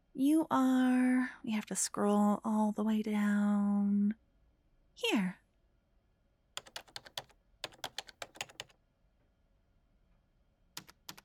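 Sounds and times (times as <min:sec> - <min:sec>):
speech: 0:00.2 - 0:04.2, 0:05.0 - 0:05.4
typing an email on a computer keyboard: 0:06.6 - 0:08.7, 0:10.8 - 0:11.2.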